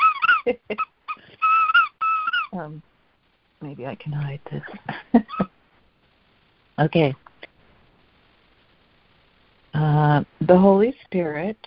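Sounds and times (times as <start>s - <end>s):
small dog squeaking and whining: 0.0s - 2.6s
speech: 0.5s - 0.9s, 2.6s - 3.0s, 3.6s - 5.5s, 6.8s - 7.2s, 9.8s - 11.6s.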